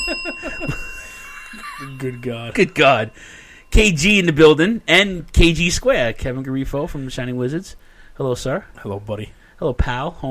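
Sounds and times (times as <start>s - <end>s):
wrestling match bell ringing: 0.0s - 5.6s
speech: 2.0s - 10.2s.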